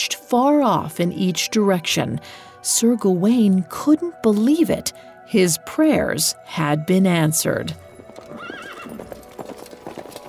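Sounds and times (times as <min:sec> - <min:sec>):
speech: 0:00.3 - 0:09.0
ridden horse hooves clip-clopping at a walk: 0:07.8 - 0:10.2
horse whinnying with a wavering high neigh: 0:08.2 - 0:09.2.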